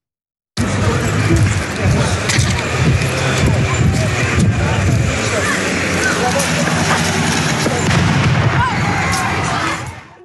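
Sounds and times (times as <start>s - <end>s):
voices: 0.6s - 10.2s
tear gas stun grenade exploding: 7.6s - 9.4s.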